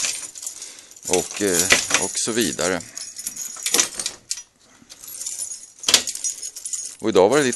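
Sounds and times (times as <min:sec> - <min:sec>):
large bunch of keys jangling as doors are opened: 0:00.0 - 0:07.5
speech: 0:01.1 - 0:03.0, 0:07.0 - 0:07.5.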